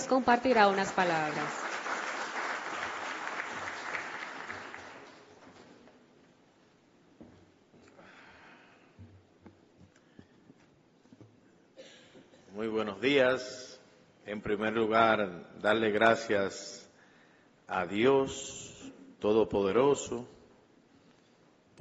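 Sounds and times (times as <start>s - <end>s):
audience applause welcoming an executive director in Santiago: 0.0s - 5.8s
speech: 0.1s - 1.7s, 12.6s - 13.7s, 14.3s - 16.8s, 17.7s - 20.4s.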